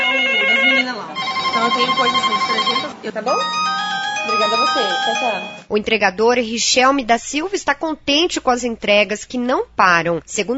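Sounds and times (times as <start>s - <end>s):
telephones ringing at a water distributor in Maringá Brazil: 0.0s - 5.7s
speech: 1.6s - 10.5s.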